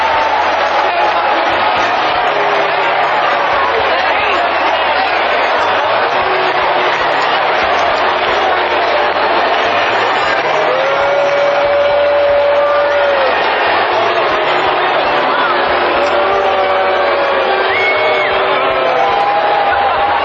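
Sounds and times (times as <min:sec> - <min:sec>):
large stadium crowd booing and cheering in Philadelphia: 0:00.0 - 0:20.2
whistles from stadium crowd: 0:17.6 - 0:18.4.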